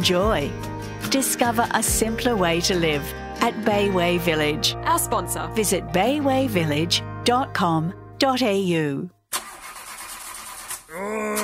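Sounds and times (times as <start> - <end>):
speech: 0.0 - 9.2, 11.0 - 11.4
car engine cranking and starting: 9.3 - 10.9.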